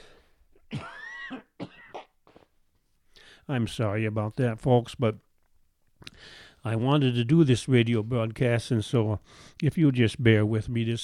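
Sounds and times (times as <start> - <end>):
person coughing forcefully: 0.7 - 2.5
speech: 3.5 - 5.3, 6.2 - 11.0.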